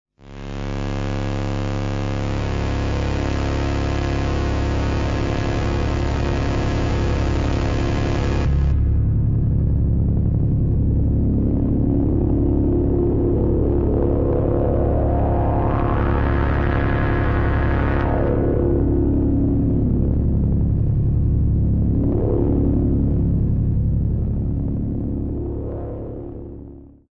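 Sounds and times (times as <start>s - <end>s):
C sharp drone: 0.3s - 27.0s.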